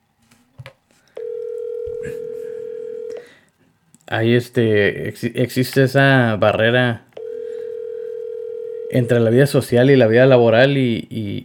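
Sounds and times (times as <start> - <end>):
telephone dial tone while dialing a call: 1.2 - 3.3, 7.2 - 8.9
speech: 4.1 - 7.0, 8.9 - 11.4.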